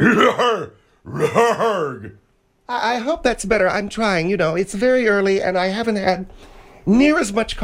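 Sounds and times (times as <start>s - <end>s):
person clearing throat: 0.0s - 2.2s
speech: 0.1s - 7.6s.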